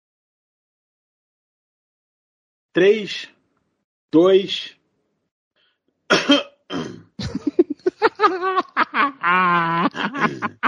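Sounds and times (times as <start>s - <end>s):
speech: 2.8s - 3.3s, 4.1s - 4.8s
person coughing with harsh coughs and raspy throaty hacks: 6.1s - 7.5s, 10.0s - 10.6s
laughter: 7.2s - 10.6s
drawn-out voiced wheeze: 9.9s - 10.6s.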